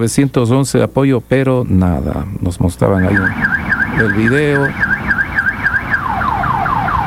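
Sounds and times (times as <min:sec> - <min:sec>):
speech: 0:00.0 - 0:04.9
car alarm blaring at night: 0:02.8 - 0:07.0.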